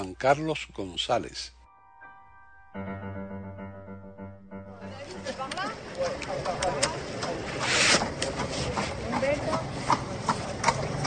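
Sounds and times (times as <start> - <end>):
busy street noise: 0.0 - 1.5, 4.6 - 11.0
speech: 0.0 - 1.6, 2.8 - 3.2
horse hooves clip-clopping on pavement: 5.2 - 11.0.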